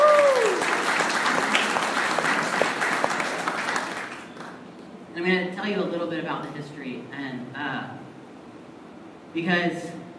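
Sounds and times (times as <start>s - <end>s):
crowd applauding at a church service: 0.0s - 4.6s
speech: 5.2s - 8.0s, 9.3s - 10.0s.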